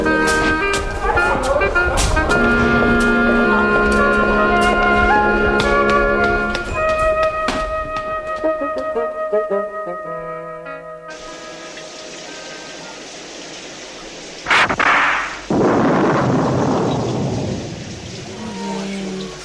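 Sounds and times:
sharp thunderclap: 0.0 - 6.3, 14.5 - 18.4
long loud rolling rumble of thunder: 0.0 - 6.5, 14.5 - 19.4
steady rain hissing: 0.0 - 6.6, 11.1 - 19.4
musical opening: 0.0 - 13.0.

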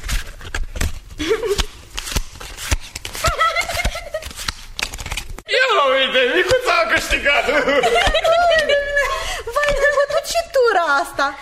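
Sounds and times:
playing cards shuffled by hand: 0.0 - 5.4
laughter: 3.2 - 4.4, 6.3 - 10.4
speech: 7.0 - 8.3, 10.7 - 11.3.

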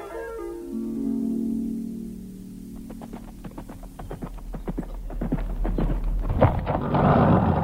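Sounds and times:
low throbbing hum: 0.7 - 7.4
stallion hooves clip-clopping: 2.7 - 7.6.

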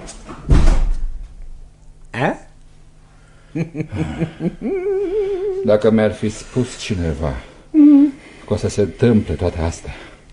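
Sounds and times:
door banging shut: 0.4 - 1.2
speech: 3.6 - 5.0, 5.6 - 7.5, 8.5 - 10.1
chuckling laughter: 3.6 - 5.7.

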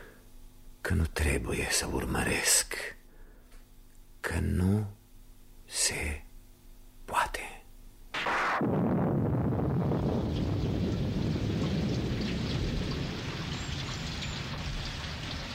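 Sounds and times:
speech: 0.9 - 3.0, 4.3 - 5.0, 5.7 - 6.2
low rumbling under rain: 8.6 - 15.5
heavy rain pouring: 9.9 - 15.5.

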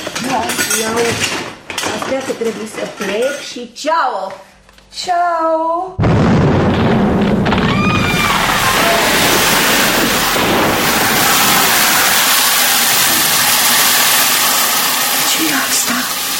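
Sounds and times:
speech: 0.3 - 7.1
roaring hissing blast of an explosion: 6.0 - 16.3.

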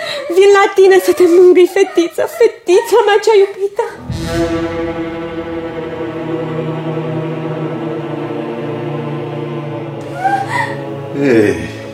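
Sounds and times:
young child whimpering in distress: 0.0 - 3.7, 10.0 - 10.9
speech: 0.3 - 5.1, 11.2 - 11.7
young child gasping cries: 10.0 - 10.9.

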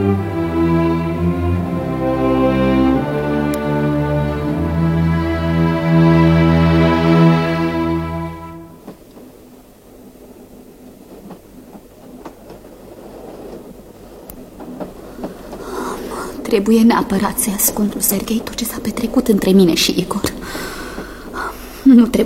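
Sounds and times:
long tonal train horn blast: 0.0 - 8.9
train wheels rumbling and clacking on rails: 10.4 - 22.2
speech: 16.6 - 20.8, 21.9 - 22.2.

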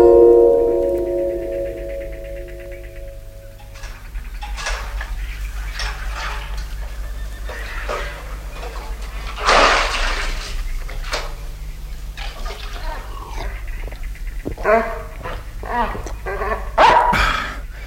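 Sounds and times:
steady low hum: 0.0 - 17.8
dog barking sharply with a whiny growling edge: 14.6 - 17.5.

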